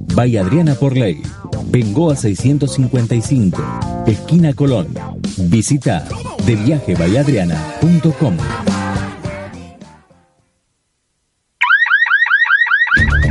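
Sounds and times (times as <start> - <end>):
speech: 0.2 - 8.7
electronic alarm whooping in rising sweeps: 11.6 - 13.2.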